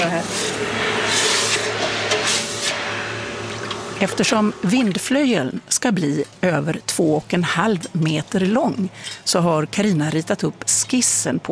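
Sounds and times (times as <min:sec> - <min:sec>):
speech: 0:00.0 - 0:01.3, 0:04.0 - 0:11.5
hot metal hissing when quenched in a bucket of water: 0:00.0 - 0:05.3.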